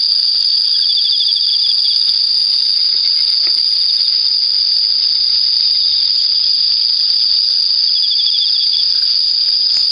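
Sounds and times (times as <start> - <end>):
Emma field cricket chirping: 0.0 - 9.9
high-pitched insect buzz: 0.0 - 9.9.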